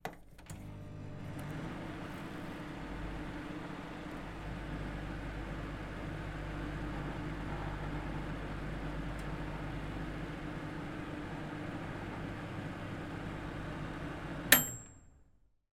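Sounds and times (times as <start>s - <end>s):
household microwave oven operating: 0.5s - 14.9s
household microwave oven finish ping: 11.0s - 15.2s.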